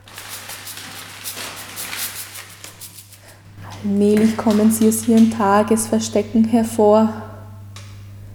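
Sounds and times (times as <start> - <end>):
rustling and crackling with small dry pops: 0.0 - 5.9
low steady hum: 0.0 - 8.3
speech: 3.8 - 7.2.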